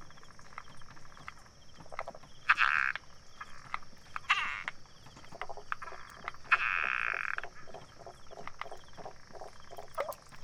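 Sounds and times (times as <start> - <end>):
frogs calling in Taiwan: 0.0 - 10.4.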